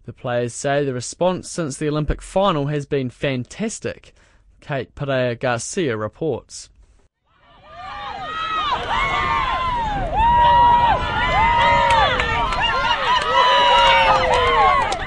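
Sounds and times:
speech: 0.0 - 6.7
large crowd cheering at a rugby tournament: 7.3 - 15.0.

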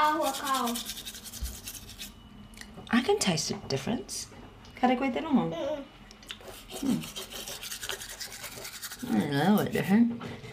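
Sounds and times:
bamboo toothbrush scrubbing over a tongue: 0.0 - 2.1, 6.3 - 9.8
speech: 0.2 - 1.1, 2.9 - 5.9, 6.8 - 7.2, 9.0 - 10.5.

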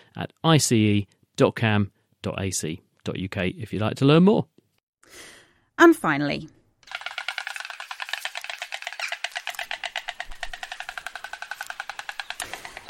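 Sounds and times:
speech: 0.2 - 6.6
white stork parents bill clattering at nest atop old oak tree in West Sussex: 6.8 - 12.8.

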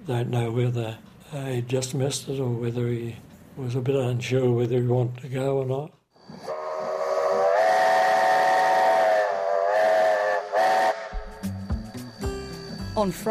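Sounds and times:
speech: 0.0 - 6.0, 13.0 - 13.2
steam train whistle of an excursion train: 6.4 - 12.8.

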